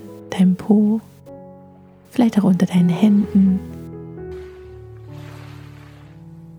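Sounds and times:
speech: 0.3s - 1.1s, 2.2s - 3.7s
gentle ocean waves washing in on a beach: 4.3s - 6.5s.

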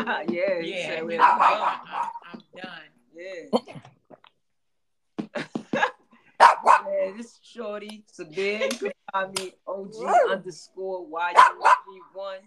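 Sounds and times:
speech: 0.0s - 2.0s, 5.3s - 12.4s
dog barking: 1.1s - 2.3s, 6.4s - 6.9s, 10.0s - 10.4s, 11.4s - 11.9s.

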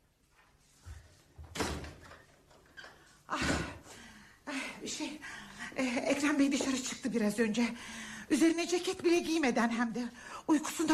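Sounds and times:
door opening with latch and hinge rattling: 1.4s - 3.8s
speech: 4.9s - 10.9s.

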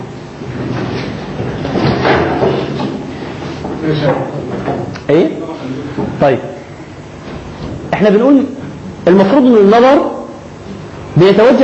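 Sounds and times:
chair being brought over and set down: 0.4s - 4.9s
speech: 3.9s - 5.5s, 6.2s - 6.5s, 8.0s - 10.1s, 11.2s - 11.6s.

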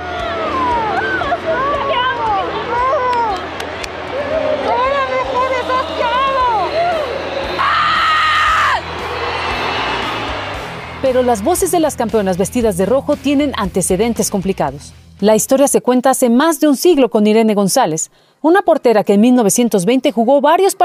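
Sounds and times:
group of voices screaming and cheering in celebration: 0.0s - 12.0s
speech: 11.1s - 20.8s.

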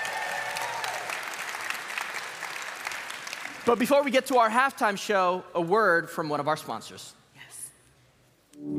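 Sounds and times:
crowd applauding at a church event: 0.0s - 4.4s
speech: 3.6s - 7.2s.

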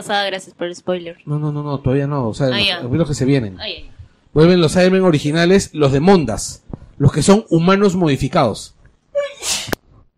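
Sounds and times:
speech: 0.0s - 9.7s
person sneezing: 9.2s - 9.8s.

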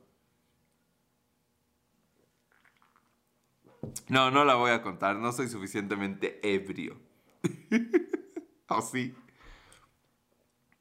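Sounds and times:
slurping sips of beer: 2.4s - 3.2s
wet gulp and swallow of beer: 2.5s - 3.2s
speech: 3.8s - 8.0s, 8.7s - 9.2s
laughter: 7.5s - 8.4s.

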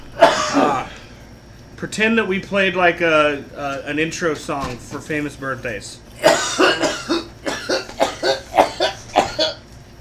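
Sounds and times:
man coughing harshly after taking a dab hit: 0.2s - 0.9s, 6.2s - 9.6s
speech: 1.8s - 6.3s.

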